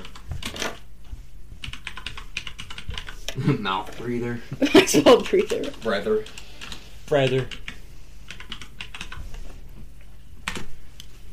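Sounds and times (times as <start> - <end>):
mechanical keyboard typing: 0.0 - 0.8, 1.6 - 3.2, 5.2 - 9.2, 10.4 - 10.7
speech: 3.4 - 6.4, 7.1 - 7.6.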